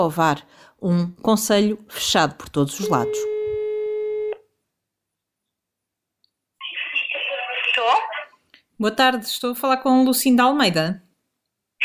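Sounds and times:
speech: 0:00.0 - 0:03.3, 0:08.8 - 0:11.0
steady electronic mobile phone call tone: 0:02.8 - 0:04.4
burst of broadband noise or voice-like sound: 0:06.6 - 0:08.2.

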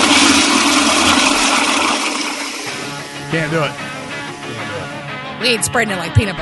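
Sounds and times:
toilet flushing: 0:00.0 - 0:04.6
speech: 0:03.3 - 0:03.8, 0:05.4 - 0:06.4.

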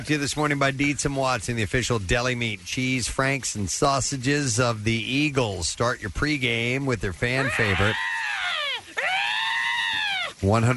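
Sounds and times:
speech: 0:00.0 - 0:08.1, 0:10.4 - 0:10.7
person imitating a hawk's screech: 0:07.4 - 0:10.4.

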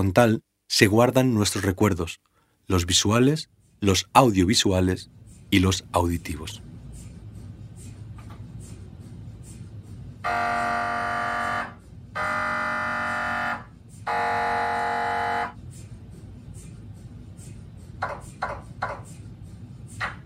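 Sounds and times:
speech: 0:00.0 - 0:06.7
steady low hum: 0:02.8 - 0:20.2
MRI scanner operating: 0:10.3 - 0:15.6.

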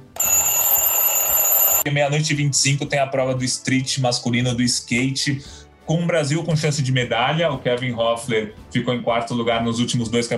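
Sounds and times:
alarm clock ringing with a loud electronic tone: 0:00.1 - 0:01.9
speech: 0:01.8 - 0:10.3.

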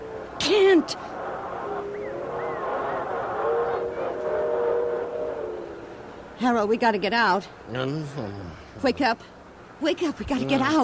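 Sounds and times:
droning rumble with sustained tonal whines: 0:00.0 - 0:07.4
speech: 0:00.8 - 0:01.1, 0:06.4 - 0:10.8.

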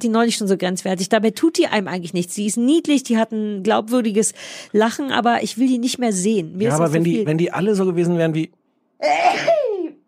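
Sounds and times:
speech: 0:00.0 - 0:09.8
sneeze: 0:09.0 - 0:09.8.

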